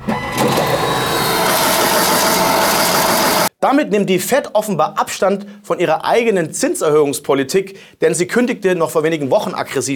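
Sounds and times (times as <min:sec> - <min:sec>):
printing press running: 0:00.0 - 0:03.5
speech: 0:03.6 - 0:09.9.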